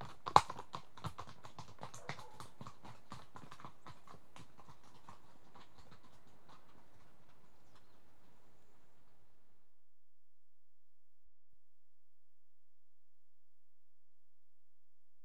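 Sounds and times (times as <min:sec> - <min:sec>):
two horses' hooves clip-clopping while walking: 0:00.0 - 0:09.4.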